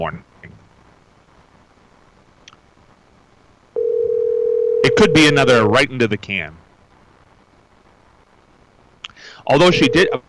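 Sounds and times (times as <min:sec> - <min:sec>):
speech: 0:00.0 - 0:00.3, 0:05.0 - 0:06.6, 0:09.4 - 0:10.2
electronic telephone ringing tone of an outgoing call: 0:03.8 - 0:05.2, 0:09.6 - 0:10.2.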